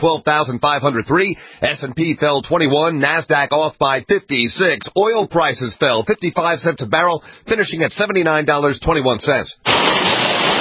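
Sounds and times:
speech: 0.0 - 10.1
heavy tropical-storm rain pouring down in Florida: 9.7 - 10.6.

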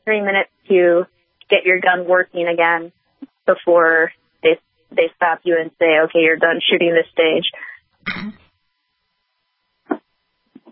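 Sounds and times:
speech: 0.0 - 8.4
person clearing throat: 8.0 - 8.5.

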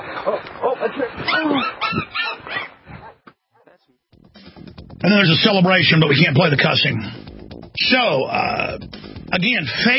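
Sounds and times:
speech: 0.2 - 2.2, 5.1 - 7.2, 7.8 - 9.9
puppy yipping and whimpering: 1.2 - 3.2.

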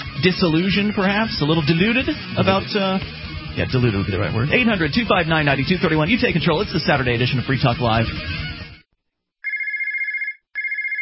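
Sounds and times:
speech: 0.2 - 8.4
phone ringing with a bright electronic trill: 9.4 - 11.0.

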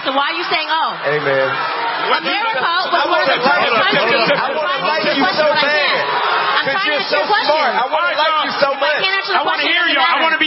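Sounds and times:
large audience booing and shouting at a speaker's statement: 0.0 - 10.4
speech: 0.0 - 10.4
laughter: 1.3 - 10.2.

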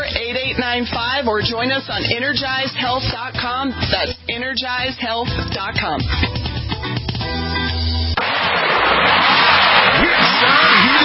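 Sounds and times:
speech: 0.5 - 7.4
tow truck engine revving: 8.2 - 11.0.

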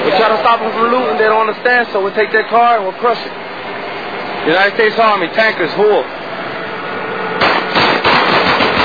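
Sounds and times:
speech: 0.2 - 3.4, 4.4 - 6.2
automatic gunfire shooting up a car: 7.4 - 8.8.

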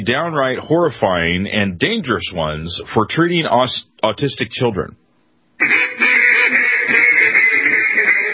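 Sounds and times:
speech: 0.0 - 5.0, 5.6 - 6.0
alert sound effect of rapid duck quacking: 5.6 - 8.3.

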